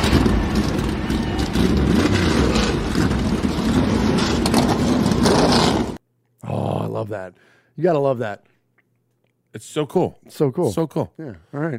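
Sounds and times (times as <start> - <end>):
race car engines roaring and revving: 0.0 - 6.0
speech: 7.0 - 8.5, 9.5 - 11.7.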